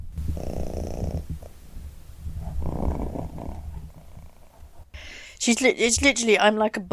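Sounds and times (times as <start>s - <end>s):
cat purring while sitting on a person's lap: 0.0s - 5.0s
speech: 5.5s - 6.9s.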